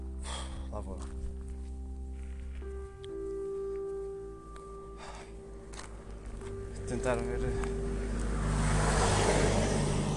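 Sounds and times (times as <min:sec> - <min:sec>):
broadband road noise: 0:00.0 - 0:10.1
vehicle engine rumble on the road: 0:00.0 - 0:10.1
speech: 0:00.8 - 0:01.2, 0:06.9 - 0:07.8.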